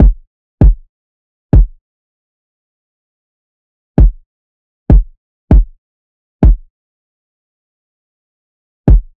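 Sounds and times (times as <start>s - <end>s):
kick drum loop: 0.0s - 0.9s, 1.5s - 1.8s, 4.0s - 4.2s, 4.9s - 5.8s, 6.4s - 6.7s, 8.9s - 9.1s.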